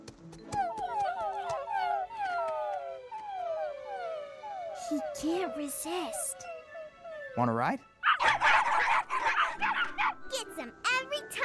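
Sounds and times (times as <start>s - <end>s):
several puppies whimpering: 0.5s - 7.4s, 8.0s - 10.2s
speech: 4.9s - 6.5s, 7.4s - 8.5s.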